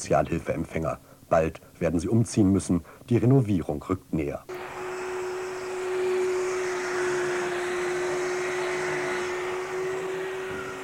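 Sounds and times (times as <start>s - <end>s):
speech: 0.0s - 4.6s
power tool whining as workers cut plasterboard: 4.5s - 10.8s.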